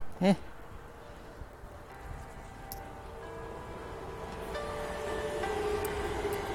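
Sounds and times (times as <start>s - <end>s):
speech: 0.2s - 0.5s
train approaching on rails: 0.5s - 6.5s
thin metallic whines from train wheels: 1.8s - 6.5s.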